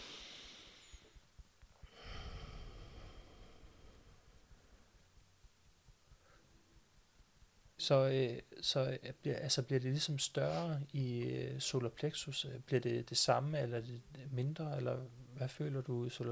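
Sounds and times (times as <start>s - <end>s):
deep breath in and out: 0.0s - 1.2s, 1.8s - 4.9s
speech: 7.8s - 16.2s.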